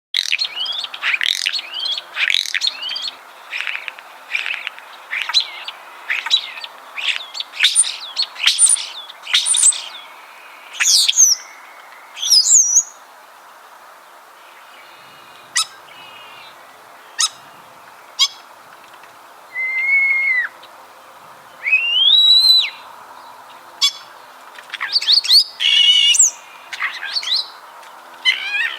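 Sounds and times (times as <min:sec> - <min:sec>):
common starling songs and calls: 0:00.2 - 0:28.7.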